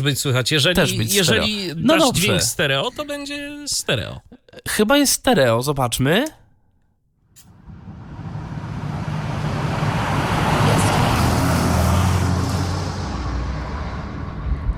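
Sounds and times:
speech: 0.0s - 6.4s
broad road rumble and tyre roar of synthesized car: 7.5s - 14.7s
synthesized car approaching at speed: 7.5s - 14.7s.

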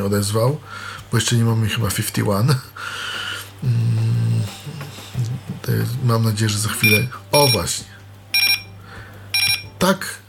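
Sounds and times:
speech: 0.0s - 4.0s, 5.7s - 8.0s, 9.8s - 10.2s
voice murmuring: 3.6s - 6.1s
alarm clock beeping: 6.8s - 10.2s.

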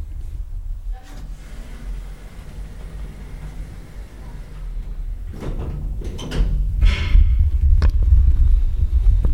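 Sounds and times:
elevator car machinery rumbling: 0.0s - 9.3s
elevator doors sliding shut: 0.9s - 7.5s.

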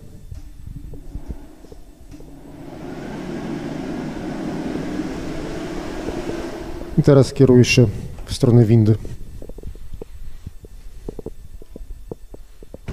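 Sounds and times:
electric dryer blowing with a steady loud whooshing roar: 0.0s - 8.2s
speech: 7.0s - 9.1s.

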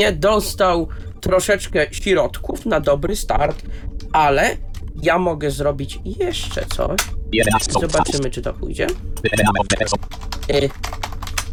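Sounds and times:
speech: 0.0s - 11.0s
Enter key press: 9.2s - 10.0s
fingers typing rapidly on a computer keyboard: 9.3s - 11.5s.

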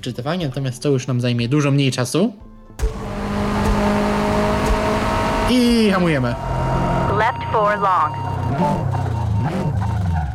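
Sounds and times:
speech: 0.0s - 2.9s, 5.5s - 6.6s, 7.5s - 9.7s
racing game car engine humming driving down pit lane: 2.8s - 10.3s.

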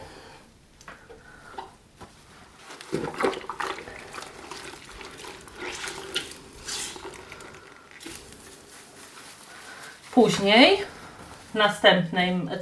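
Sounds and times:
scrubbing a window pane with water and detergent in small circles: 2.4s - 12.0s
speech: 10.2s - 10.9s, 11.6s - 12.5s.

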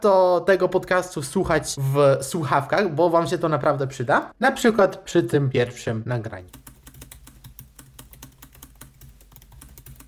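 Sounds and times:
speech: 0.0s - 6.7s
fast typing on a MacBook Pro M3 laptop keyboard: 6.5s - 10.0s.

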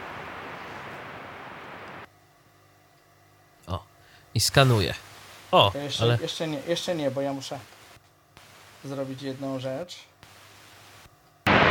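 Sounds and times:
radio static hiss from a radio receiver on the long-wave band: 0.0s - 2.1s, 4.4s - 11.6s
speech: 4.4s - 7.8s, 8.8s - 10.1s.

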